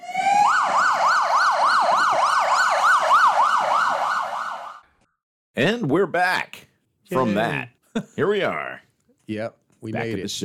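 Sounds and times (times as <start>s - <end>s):
ambulance siren wailing in a fast yelp: 0.0s - 4.8s
speech: 5.6s - 10.4s.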